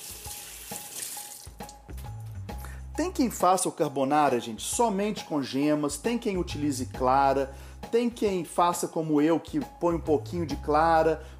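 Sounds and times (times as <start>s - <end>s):
running kitchen tap water stream: 0.0s - 1.8s
speech: 3.0s - 11.3s.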